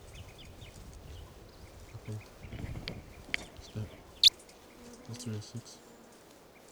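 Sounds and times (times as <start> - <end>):
toucan calling: 0.1 - 4.9
speech: 5.2 - 5.9.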